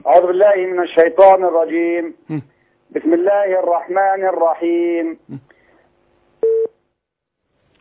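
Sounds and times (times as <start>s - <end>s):
speech: 0.0s - 5.5s
telephone busy tone beep: 6.4s - 6.7s.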